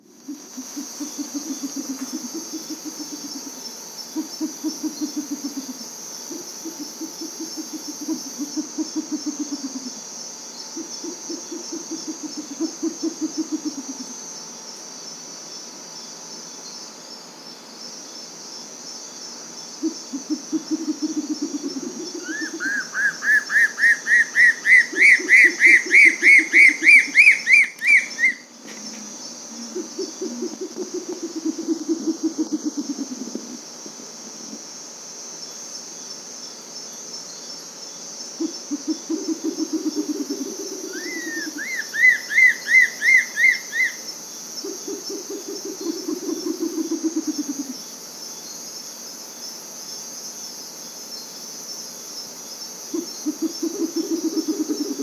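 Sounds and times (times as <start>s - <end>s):
Bare legged owl calling: 4.2s - 9.9s, 10.8s - 14.0s, 19.8s - 33.6s, 38.4s - 47.8s, 52.9s - 55.0s.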